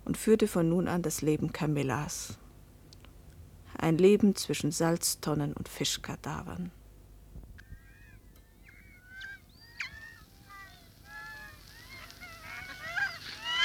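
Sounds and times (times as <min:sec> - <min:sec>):
speech: 0:00.1 - 0:02.4, 0:03.8 - 0:06.8
flock of seagulls calling: 0:07.6 - 0:13.6.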